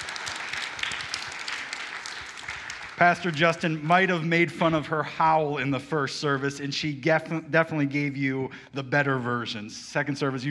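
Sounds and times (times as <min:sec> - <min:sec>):
children applauding after a story at a church service: 0:00.0 - 0:03.8
speech: 0:03.0 - 0:10.4.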